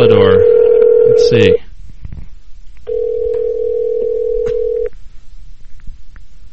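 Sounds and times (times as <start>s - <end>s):
steady telephone ringing tone: 0.0s - 1.6s, 2.9s - 4.9s
faint hum: 0.0s - 6.5s
speech: 1.3s - 1.6s.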